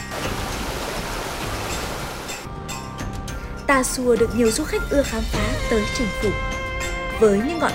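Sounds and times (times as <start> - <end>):
flowing mountain stream water: 0.0 - 2.5
speech: 3.7 - 6.5, 7.2 - 7.7.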